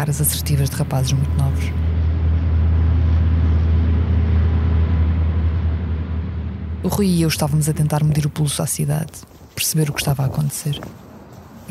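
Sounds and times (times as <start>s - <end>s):
speech: 0.0s - 1.8s, 6.8s - 11.1s
column of military tanks rumbling past through a city: 0.0s - 8.3s.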